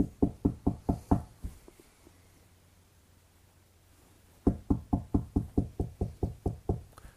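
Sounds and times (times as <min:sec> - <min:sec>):
rapid loud knocking on a door: 0:00.0 - 0:01.6, 0:04.4 - 0:06.9.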